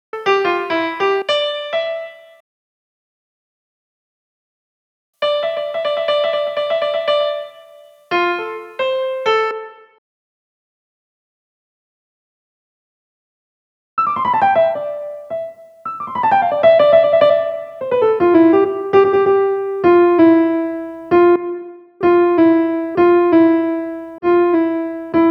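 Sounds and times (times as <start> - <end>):
piano: 0.1 - 2.4, 5.2 - 10.0, 14.0 - 25.2.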